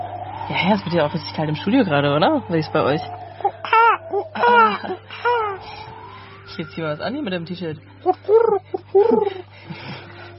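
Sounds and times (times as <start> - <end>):
steady low hum: 0.0 - 10.3
speech: 0.5 - 3.3, 4.1 - 5.9, 6.6 - 9.4
pigeons cooing: 3.1 - 5.7, 8.0 - 9.4.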